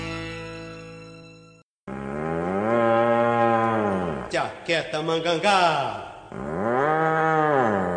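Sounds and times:
cow mooing: 1.9s - 4.4s, 6.3s - 7.9s
speech: 4.4s - 6.5s.

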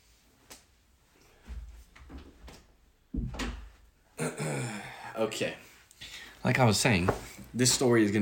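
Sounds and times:
door closing thump: 3.1s - 3.8s
speech: 5.2s - 5.6s, 6.4s - 8.1s.

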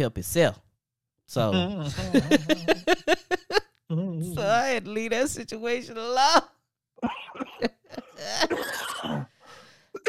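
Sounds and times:
speech: 0.0s - 0.6s, 1.3s - 9.3s
laughter: 1.6s - 3.6s
person coughing after something went down the wrong pipe: 7.0s - 9.3s
person gasping: 9.2s - 10.0s.

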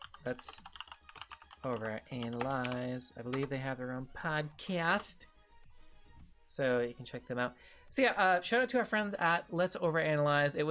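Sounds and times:
fast typing on a computer keyboard: 0.0s - 3.5s
speech: 0.2s - 0.8s, 1.6s - 5.3s, 6.5s - 10.6s.

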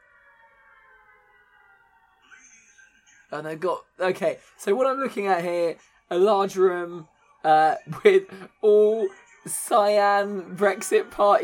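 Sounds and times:
air-raid siren wailing at the start of a rave video: 0.0s - 2.6s
speech: 3.3s - 11.4s.

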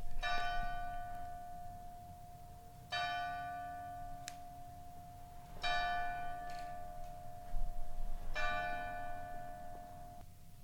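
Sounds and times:
church bell tolling: 0.2s - 10.2s.

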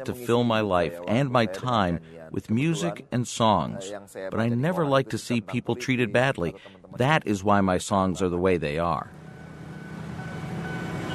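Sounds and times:
speech: 0.0s - 9.2s
train passing through a railway station in central Jakarta Indonesia: 9.1s - 11.1s.

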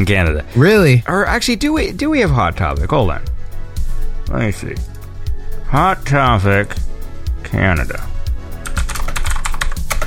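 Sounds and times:
speech: 0.0s - 3.3s, 4.3s - 4.9s, 5.7s - 6.9s, 7.5s - 8.1s
typing on a mechanical keyboard: 8.6s - 10.0s.

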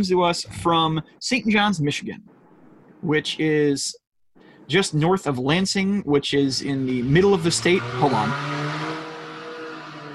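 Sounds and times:
speech: 0.0s - 2.4s, 3.0s - 4.0s, 4.7s - 8.6s
cars drag racing in an unpaved parking lot: 6.6s - 10.1s.

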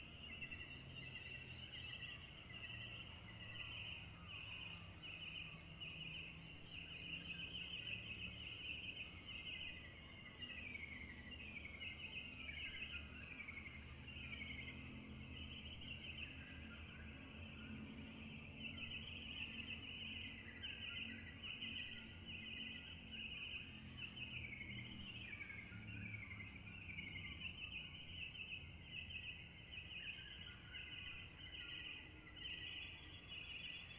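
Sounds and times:
dawn chorus of birds chirping and whistling: 0.0s - 33.9s.

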